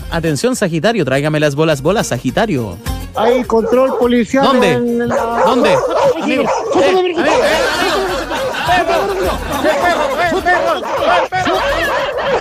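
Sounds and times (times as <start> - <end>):
speech: 0.1 - 8.1, 8.7 - 12.3
noisy jumble of overlapping voices and chatter: 3.2 - 12.3
dog barking: 3.3 - 12.3
people laughing: 3.4 - 12.3.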